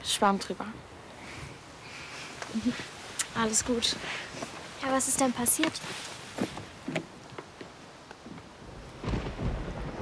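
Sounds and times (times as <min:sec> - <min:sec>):
speech: 0:00.2 - 0:00.9, 0:02.5 - 0:07.0
crackling rain-like patter: 0:02.1 - 0:10.0
thunder rumbling: 0:08.6 - 0:10.0.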